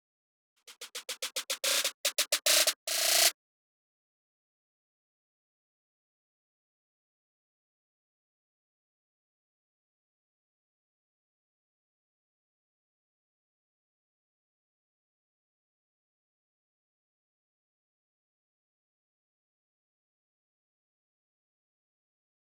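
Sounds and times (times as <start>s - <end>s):
snare roll: 0.7s - 3.3s.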